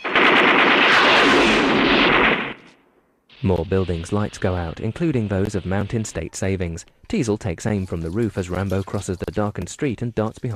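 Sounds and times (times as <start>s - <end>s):
automatic gunfire from a film shooting out windows and a junction box: 0.0s - 2.6s
speech: 3.4s - 10.5s.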